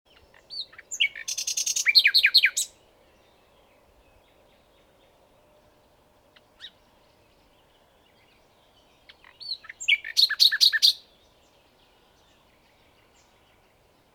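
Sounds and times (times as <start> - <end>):
common nightingale Luscinia megarhynchos singing rattling downslurred phrases: 0.1 - 2.8, 7.7 - 13.8.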